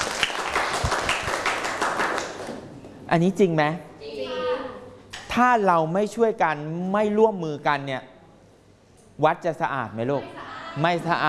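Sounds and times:
students clapping in a classroom after a group presentation: 0.0s - 2.7s
speech: 3.1s - 3.9s, 5.3s - 8.1s, 9.2s - 11.2s.

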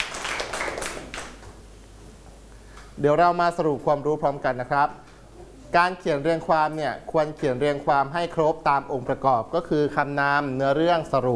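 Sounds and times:
students clapping in a classroom: 0.0s - 1.6s
speech: 3.0s - 5.0s, 5.7s - 11.3s.

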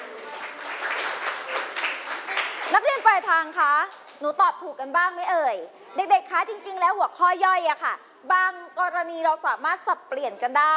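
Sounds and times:
students in a class clapping for themselves: 0.0s - 2.8s
speech: 2.7s - 10.7s.

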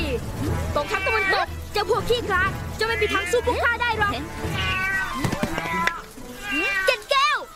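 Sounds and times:
speech: 0.2s - 4.8s
cat meowing: 0.7s - 1.5s, 2.8s - 3.4s, 4.5s - 7.5s.

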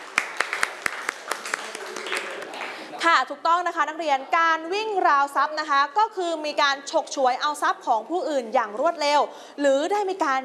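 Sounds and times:
classroom students clapping for themselves: 0.0s - 2.9s
speech: 3.1s - 10.4s.

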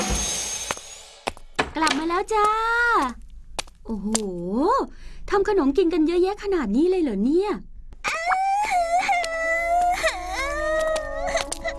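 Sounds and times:
speech: 1.8s - 3.2s, 3.9s - 7.7s
child crying in loud high wailing sobs: 8.1s - 11.7s.

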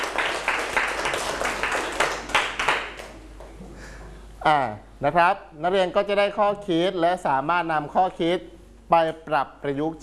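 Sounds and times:
students clapping for a classmate: 0.0s - 3.6s
speech: 4.4s - 10.0s.

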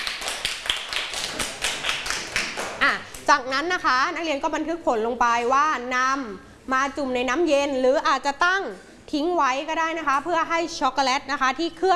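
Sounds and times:
group of people clapping in a room: 0.0s - 3.3s
speech: 3.3s - 11.9s.

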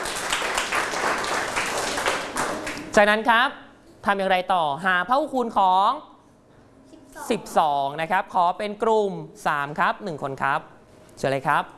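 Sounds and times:
classroom of students clapping for a classmate: 0.0s - 2.9s
speech: 3.0s - 6.1s, 7.2s - 11.7s.

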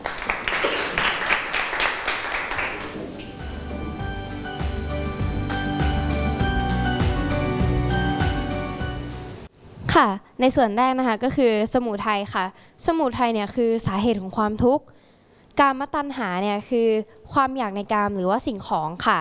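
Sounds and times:
small group of students applauding in a classroom: 0.0s - 3.8s
music with chiming tones and a pulsing beat: 3.3s - 9.5s
speech: 10.0s - 15.0s, 15.6s - 19.1s.

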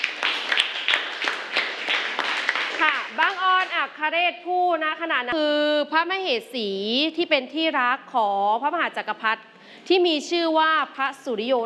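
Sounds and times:
group clapping hands in applause: 0.0s - 3.9s
speech: 3.2s - 11.6s.

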